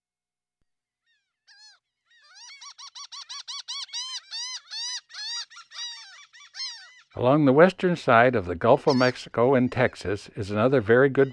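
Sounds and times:
speech: 0:07.2 - 0:11.3
laughing gull laughing call: 0:08.1 - 0:11.3.

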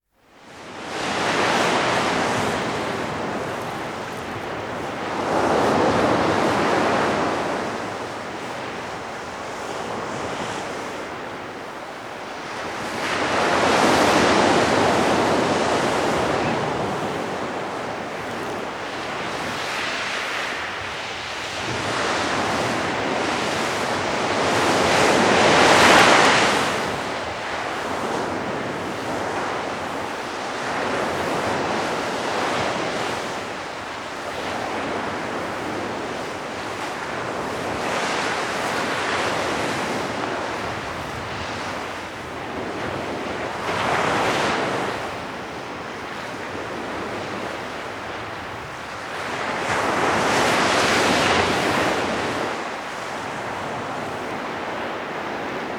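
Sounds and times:
waves crashing on the shore: 0:00.4 - 0:55.7.

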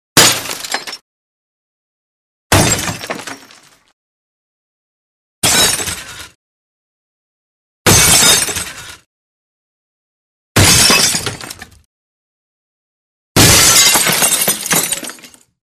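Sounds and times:
medium glass crash with falling pieces: 0:00.2 - 0:01.0, 0:02.5 - 0:03.8, 0:07.9 - 0:08.9, 0:10.6 - 0:11.7, 0:13.4 - 0:15.5.

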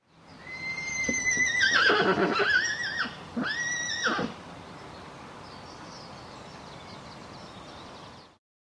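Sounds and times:
horse neighing: 0:00.4 - 0:04.4.

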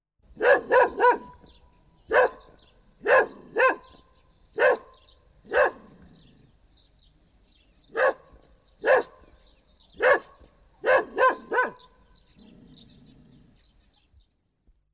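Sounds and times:
dog: 0:00.4 - 0:01.5, 0:02.1 - 0:02.5, 0:03.1 - 0:04.0, 0:04.6 - 0:05.9, 0:08.0 - 0:09.3, 0:10.0 - 0:11.9.

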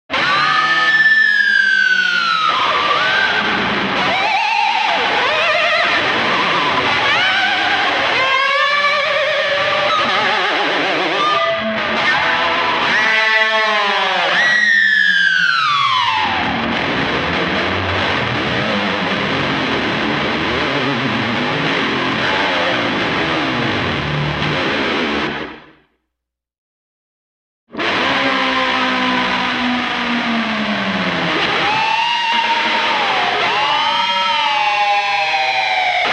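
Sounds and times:
weird distorted electric guitar: 0:00.1 - 0:26.0, 0:27.7 - 0:36.1.

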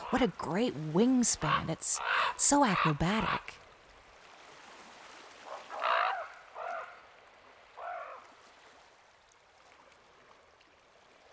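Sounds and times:
speech: 0:00.1 - 0:03.6
common raven croaking: 0:01.3 - 0:03.6, 0:05.5 - 0:07.0, 0:07.8 - 0:08.2.

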